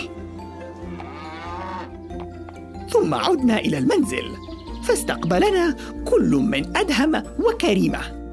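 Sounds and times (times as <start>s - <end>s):
cow mooing in a long low bellow: 0.0s - 2.0s
speech: 3.0s - 8.2s.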